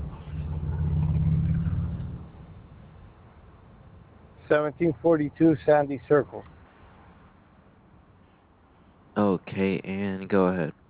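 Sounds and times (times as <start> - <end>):
car engine while driving: 0.0 - 7.2
speech: 4.5 - 6.6, 9.2 - 10.8.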